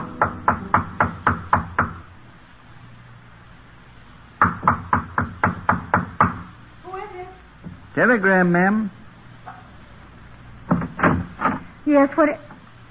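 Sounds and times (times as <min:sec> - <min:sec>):
sharp knocks on a hotel room door: 0:00.2 - 0:02.0, 0:04.4 - 0:06.5, 0:10.7 - 0:11.7
speech: 0:08.0 - 0:09.0, 0:11.9 - 0:12.5.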